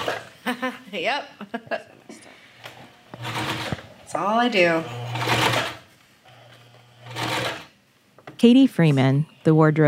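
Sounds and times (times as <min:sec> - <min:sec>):
speech: 0:00.9 - 0:02.0, 0:04.1 - 0:05.4, 0:08.4 - 0:09.8
sewing machine stitching fabric: 0:03.2 - 0:03.9, 0:04.6 - 0:05.8, 0:06.4 - 0:07.7.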